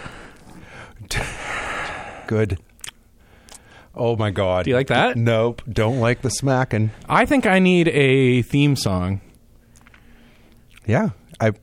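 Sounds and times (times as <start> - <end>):
breathy exhale into a microphone: 0.0 - 2.3, 3.2 - 3.9, 9.9 - 10.6
speech: 2.3 - 2.7, 4.0 - 9.2, 10.9 - 11.6.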